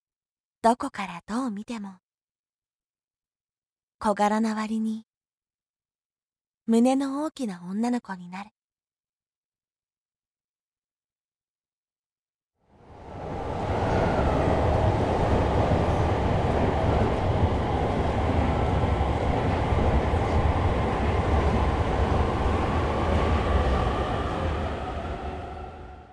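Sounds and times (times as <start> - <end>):
speech: 0.6 - 2.0, 4.0 - 5.1, 6.7 - 8.6
train interior rumble in motion: 12.8 - 26.1.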